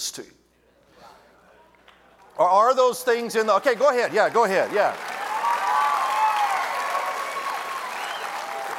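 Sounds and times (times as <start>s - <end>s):
speech: 0.0s - 0.4s, 2.4s - 5.2s
room full of people clapping: 1.9s - 8.7s.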